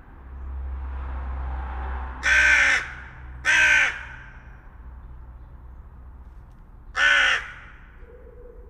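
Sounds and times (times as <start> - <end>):
carrion crow Corvus corone giving rough grating caws: 2.2 - 4.6, 7.0 - 8.3.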